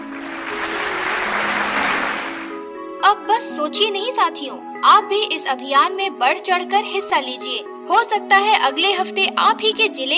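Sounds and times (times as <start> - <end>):
loud applause from a crowd: 0.0 - 2.6
speech: 3.6 - 10.1.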